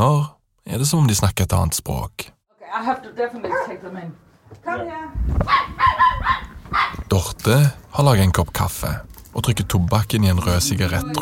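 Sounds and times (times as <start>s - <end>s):
speech: 0.0s - 11.2s
dog barking in short rough bursts: 3.4s - 3.8s, 5.4s - 7.1s.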